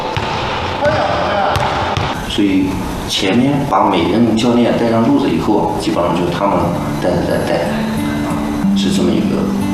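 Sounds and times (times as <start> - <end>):
basketball bouncing on a hard floor in a gym: 0.2 - 2.2
speech: 2.4 - 7.9, 8.8 - 9.6.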